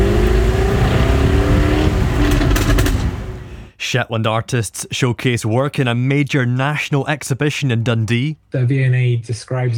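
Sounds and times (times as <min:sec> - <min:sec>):
ultra-rare Jaguar sports car engine roaring during a drive: 0:00.0 - 0:03.7
speech: 0:03.9 - 0:09.7.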